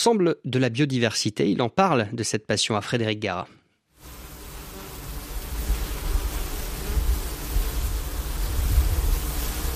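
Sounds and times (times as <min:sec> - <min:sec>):
speech: 0:00.0 - 0:03.6
many honeybees buzzing: 0:04.0 - 0:09.7.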